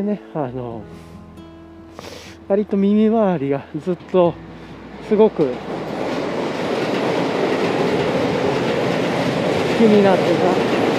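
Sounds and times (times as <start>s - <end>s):
speech: 0.0s - 1.2s, 2.0s - 5.8s, 9.8s - 10.8s
train passing: 2.4s - 10.9s
train wheels clattering on rails: 3.8s - 10.9s.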